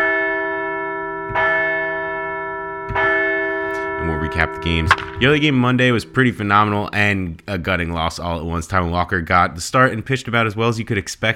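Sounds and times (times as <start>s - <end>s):
large resonant bell ringing to celebrate a baseball win: 0.0s - 7.4s
speech: 4.3s - 11.3s.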